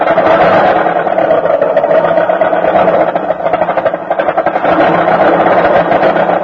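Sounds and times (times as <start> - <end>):
car engine bucking and sputtering on a cold winter morning start: 0.0 - 6.4.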